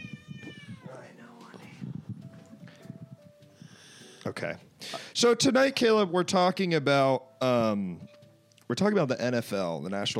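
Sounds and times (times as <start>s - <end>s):
cat meowing insistently: 0.0s - 1.4s
speech: 4.2s - 8.1s, 8.7s - 10.1s.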